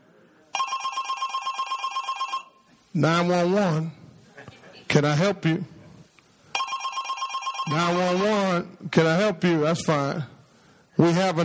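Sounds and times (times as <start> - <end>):
telephone bell ringing: 0.6 - 2.7, 6.6 - 8.2
speech: 2.9 - 4.0, 4.9 - 5.8, 7.7 - 10.4, 11.0 - 11.4.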